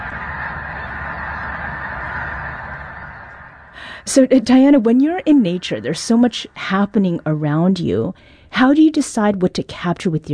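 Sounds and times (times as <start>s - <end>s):
huge flock of snow geese honking: 0.0s - 7.7s
speech: 4.0s - 10.3s.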